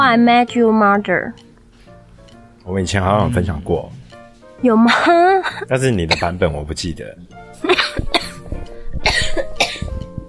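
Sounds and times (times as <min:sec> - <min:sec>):
speech: 0:00.1 - 0:01.5, 0:02.6 - 0:04.0, 0:04.6 - 0:08.1
person coughing in harsh throaty bursts: 0:06.1 - 0:06.4, 0:07.6 - 0:10.0.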